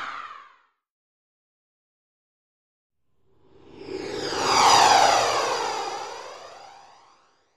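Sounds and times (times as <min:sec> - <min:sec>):
sci-fi spaceship flying by: 0:03.4 - 0:07.4.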